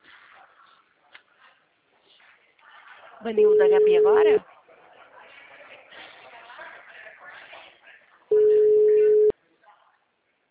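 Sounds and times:
faint murmuring noise on a telephone line: 0.0s - 10.4s
speech: 3.2s - 4.5s
loud steady telephone busy signal tone: 3.4s - 4.4s, 8.3s - 9.3s.

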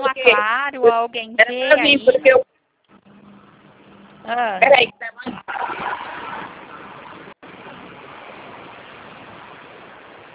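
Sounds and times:
speech: 0.2s - 2.5s, 4.2s - 6.1s
noisy car passing: 3.0s - 10.3s.

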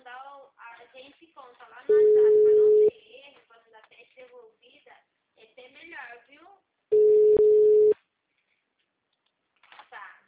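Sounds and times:
telephone busy signal: 1.9s - 2.9s, 6.9s - 8.0s.

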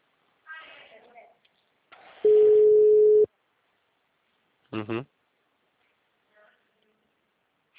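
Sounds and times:
telephone ringing tone during an outgoing sales call: 2.3s - 3.3s
person speaking: 4.7s - 5.1s.

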